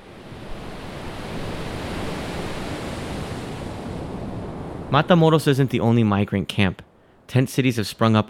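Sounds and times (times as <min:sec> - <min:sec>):
Pacific Ocean surf washing onto a shore at Tijuana Mexico: 0:00.0 - 0:06.0
speech: 0:04.9 - 0:08.2.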